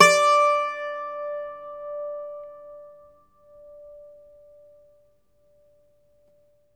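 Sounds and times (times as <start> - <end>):
Irish bazouki plucked strings: 0.0 - 2.9.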